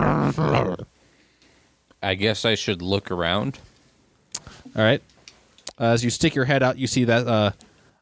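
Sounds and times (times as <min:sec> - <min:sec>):
human voice imitating a low rumbling growl: 0:00.0 - 0:00.9
speech: 0:00.3 - 0:01.0, 0:02.0 - 0:03.7, 0:04.7 - 0:05.1, 0:05.8 - 0:07.6.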